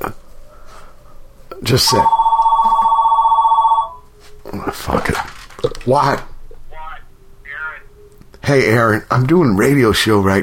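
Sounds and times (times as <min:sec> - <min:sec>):
telephone ringing with a rapid warbling trill: 0:01.6 - 0:04.1
speech: 0:01.7 - 0:02.2, 0:04.5 - 0:06.3, 0:08.5 - 0:10.4.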